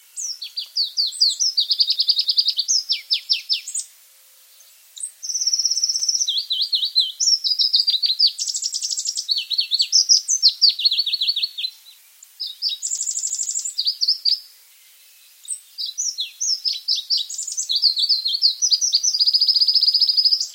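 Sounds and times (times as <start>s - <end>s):
Pallas's leaf warbler: 0.0s - 20.5s.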